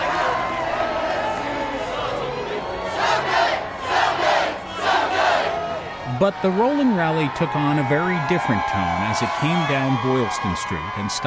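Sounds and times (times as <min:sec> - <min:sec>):
large outdoor street crowd of fans singing and chanting in unison: 0:00.0 - 0:06.0
speech: 0:06.2 - 0:11.2.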